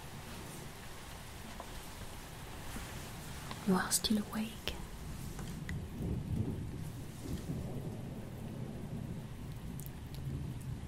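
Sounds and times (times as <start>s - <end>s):
steady rain hissing in a thunderstorm: 0.0s - 10.8s
speech: 3.7s - 4.7s
deep rolling thunder rumbling: 4.9s - 10.8s.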